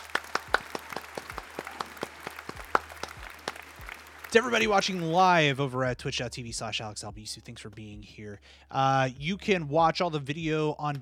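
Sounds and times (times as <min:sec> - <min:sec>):
hosts clapping to end the show: 0:00.0 - 0:05.5
speech: 0:04.3 - 0:11.0.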